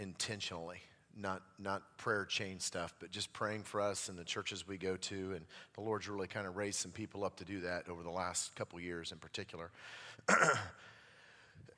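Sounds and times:
speech: 0.0 - 10.9, 11.6 - 11.7
harsh cough: 10.3 - 10.8.

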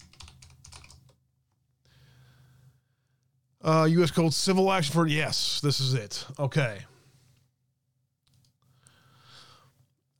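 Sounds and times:
typing on a computer keyboard: 0.0 - 1.2
speech: 3.6 - 6.9.

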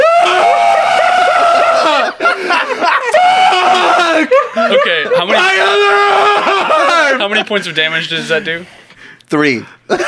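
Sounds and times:
person voicing a wounded monster's shrieking scream for a game character: 0.0 - 2.2, 3.1 - 4.3, 5.3 - 7.0
laughter: 0.0 - 8.6, 9.9 - 10.0
speech: 7.3 - 10.0.

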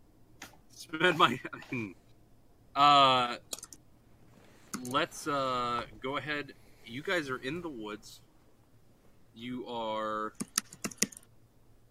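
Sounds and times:
speech: 0.9 - 2.0, 2.8 - 3.6, 4.8 - 8.2, 9.4 - 10.5
typing on a computer keyboard: 3.5 - 3.8, 10.3 - 11.3.

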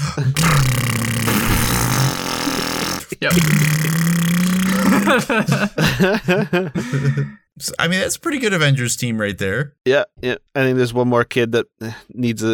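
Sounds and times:
voice imitating a revving motorcycle engine: 0.4 - 5.3
speech: 3.2 - 3.9, 5.1 - 12.5
laughter: 4.6 - 7.4.

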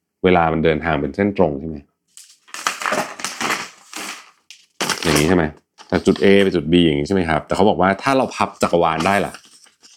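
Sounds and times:
speech: 0.2 - 1.9, 5.3 - 9.4
sheet of paper crinkling as it is folded and handled: 2.2 - 6.6, 9.0 - 9.9.

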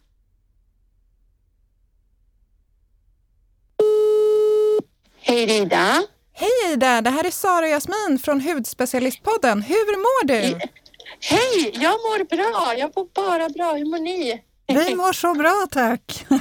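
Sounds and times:
telephone ringback tone: 3.8 - 4.8
speech: 5.3 - 16.3.

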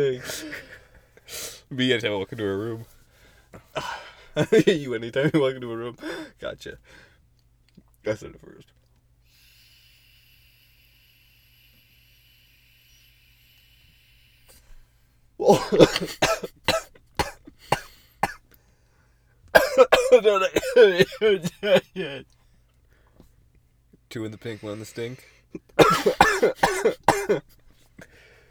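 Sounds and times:
speech: 0.0 - 0.7, 1.3 - 7.1, 8.0 - 8.8, 15.4 - 16.8, 19.8 - 22.4, 24.1 - 27.6
harsh coughing: 0.0 - 1.6, 3.6 - 4.8, 15.4 - 18.4, 19.5 - 22.2, 25.0 - 27.6
quiet throat sound: 15.4 - 18.4, 25.8 - 27.4.

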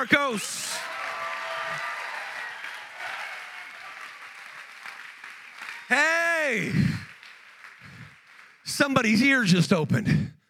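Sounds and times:
speech: 0.0 - 0.9, 5.9 - 6.9, 8.8 - 10.4
scattered cheers and shouts: 0.0 - 7.1
large crowd clapping: 0.0 - 9.6.

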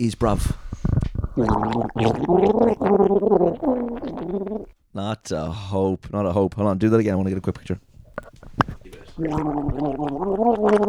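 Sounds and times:
speech: 0.0 - 0.6, 1.4 - 7.9, 9.2 - 10.8
person gargling water as a guessing game: 0.0 - 4.7, 7.4 - 10.8.

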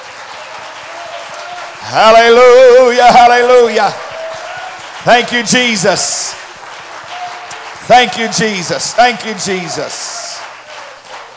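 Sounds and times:
audience clapping hands in praise: 0.0 - 11.3
speech: 1.8 - 4.0, 5.0 - 6.4, 7.9 - 10.1.

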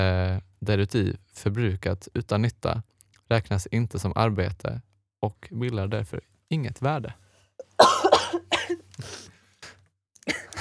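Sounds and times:
speech: 0.0 - 7.2
harsh raspy coughing: 7.6 - 9.3, 10.3 - 10.6.

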